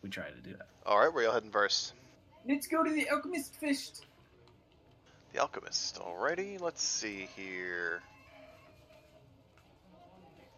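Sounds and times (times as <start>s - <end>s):
speech: 0.0s - 4.1s, 5.3s - 8.1s
sick rooster crowing hoarsely: 7.9s - 9.0s.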